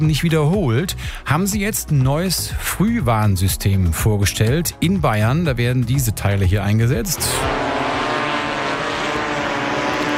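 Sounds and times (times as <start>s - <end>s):
speech: 0.0s - 7.8s
drone propellers buzzing over forests in Bavaria Germany: 7.2s - 10.1s.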